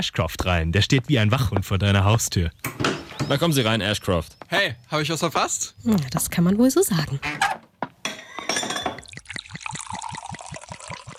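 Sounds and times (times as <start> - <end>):
speech: 0.0 - 7.6
glasses clinking during a toast: 8.0 - 11.1
steady splashing pour with rhythmic glugs: 8.1 - 11.1.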